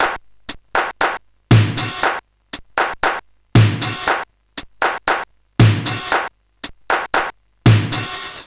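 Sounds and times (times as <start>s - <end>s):
electronic drum kit clap: 0.0s - 1.2s, 1.8s - 5.3s, 5.9s - 8.2s.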